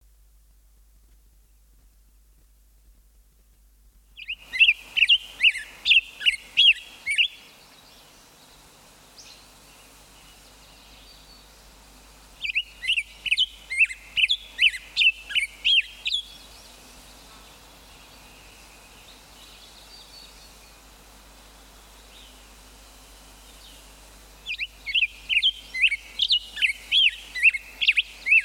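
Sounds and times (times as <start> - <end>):
songbirds singing: 4.0 - 28.4
black-headed grosbeak singing: 4.2 - 11.6, 12.4 - 21.0, 23.4 - 28.4.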